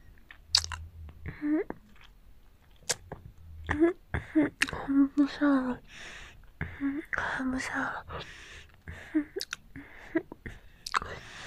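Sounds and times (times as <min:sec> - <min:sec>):
person chewing a big meatball: 0:00.1 - 0:03.9, 0:09.4 - 0:09.7, 0:10.8 - 0:11.2
speech: 0:01.4 - 0:01.8, 0:03.7 - 0:09.6.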